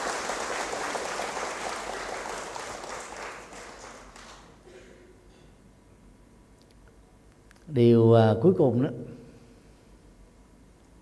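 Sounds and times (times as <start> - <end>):
crowd applauding: 0.0 - 4.6
speech: 7.7 - 9.1.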